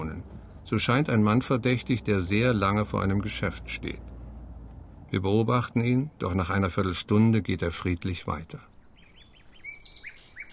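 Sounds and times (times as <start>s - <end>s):
speech: 0.7s - 4.1s, 5.1s - 8.7s
nightingale singing at night: 8.7s - 10.5s.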